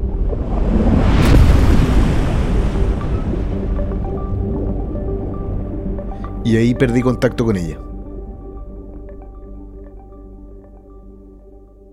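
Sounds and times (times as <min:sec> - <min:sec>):
turbulent water churning: 0:00.0 - 0:06.3
giant ocean wave crashing: 0:00.0 - 0:07.8
speech: 0:06.5 - 0:07.9.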